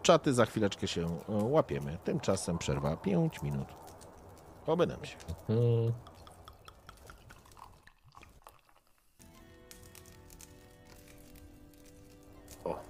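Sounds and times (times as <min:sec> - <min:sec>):
speech: 0:00.0 - 0:03.9, 0:04.7 - 0:06.1
fire crackling and popping: 0:00.0 - 0:12.8.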